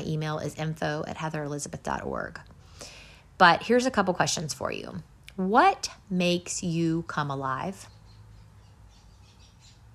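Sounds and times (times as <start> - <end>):
speech: 0.0 - 8.0
low steady hum: 0.0 - 9.9
birds chirping outdoors: 7.0 - 9.9.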